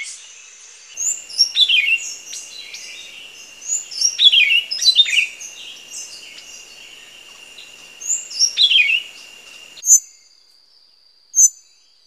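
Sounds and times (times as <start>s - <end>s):
Buff-throated Saltator: 1.0s - 9.8s.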